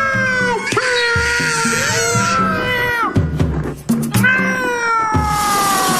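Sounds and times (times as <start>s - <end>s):
screeching and yowling: 0.0s - 3.3s, 4.2s - 5.9s.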